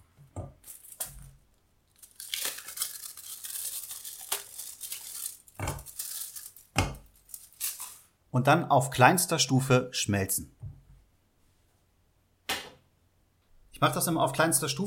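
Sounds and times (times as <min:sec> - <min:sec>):
chocolate bar wrappers crinkling and tearing: 0:00.6 - 0:08.1
chocolate bars snapping as they are halved: 0:02.0 - 0:07.2
speech: 0:08.4 - 0:10.6, 0:13.8 - 0:14.8.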